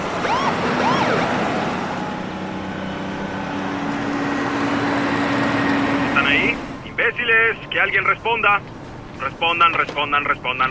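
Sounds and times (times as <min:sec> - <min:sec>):
police car sirens wailing and yelping: 0:00.0 - 0:04.2
road traffic and engine rumble: 0:00.0 - 0:10.6
speech: 0:07.6 - 0:10.6.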